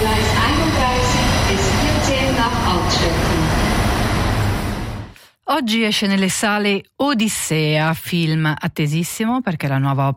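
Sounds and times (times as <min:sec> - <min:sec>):
train pulling away from a station rumbling: 0:00.0 - 0:05.2
speech: 0:05.6 - 0:10.1.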